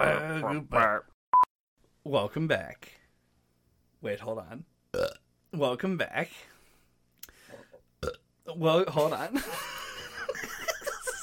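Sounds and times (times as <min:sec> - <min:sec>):
speech: 0:00.0 - 0:01.1, 0:02.0 - 0:03.0, 0:04.0 - 0:06.5, 0:08.0 - 0:10.5
burps: 0:04.9 - 0:05.2, 0:08.0 - 0:08.2
laughter: 0:09.3 - 0:11.2.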